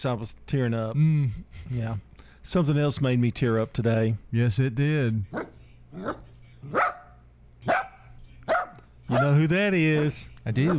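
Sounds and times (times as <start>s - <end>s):
speech: 0.0s - 7.0s, 9.1s - 10.7s
low hum: 0.0s - 10.7s
dog barking: 5.4s - 9.4s.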